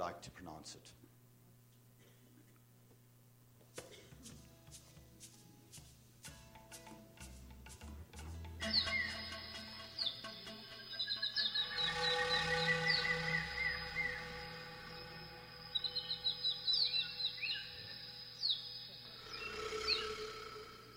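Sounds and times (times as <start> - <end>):
speech: 0.0 - 1.1
Hoatzin calls in the Amazon: 8.6 - 20.9
rainforest chorus of chirps and whistles: 8.6 - 20.9.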